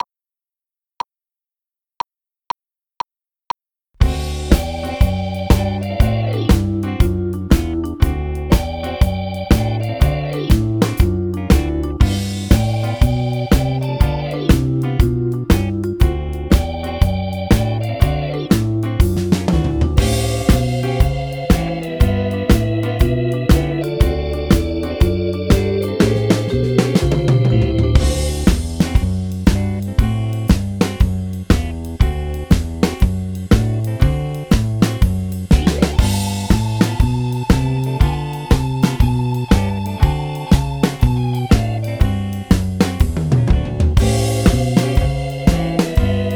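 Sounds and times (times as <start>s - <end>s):
keyboard music piece: 4.0s - 46.3s.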